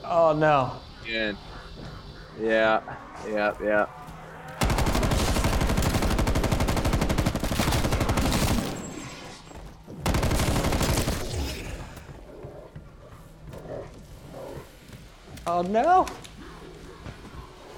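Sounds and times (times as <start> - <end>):
video game noise: 0.0 - 17.7
speech: 0.1 - 4.0, 15.5 - 16.2
video game gunfire in a zombie shooter: 4.6 - 9.0, 10.0 - 11.8.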